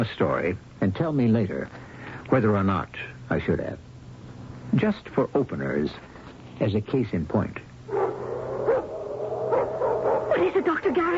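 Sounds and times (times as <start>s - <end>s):
speech: 0.0s - 3.9s, 4.7s - 8.0s, 10.6s - 11.1s
low steady hum: 0.0s - 11.1s
Doberman pinschers barking: 7.9s - 11.1s.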